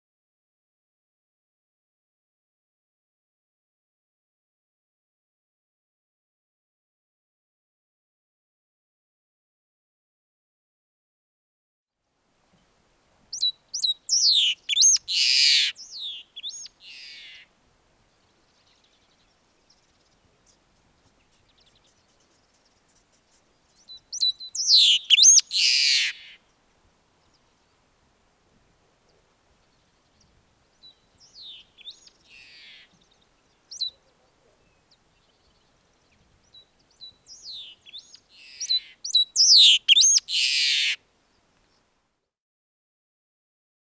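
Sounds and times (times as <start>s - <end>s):
loica bird: 13.3s - 17.5s, 18.1s - 26.6s, 29.1s - 41.9s.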